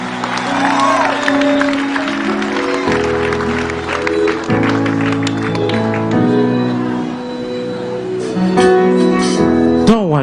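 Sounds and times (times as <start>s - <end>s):
audience applause in praise: 0.0s - 7.1s
audience cheering: 0.0s - 7.5s
loud sustained organ or keyboard chords: 0.0s - 10.2s.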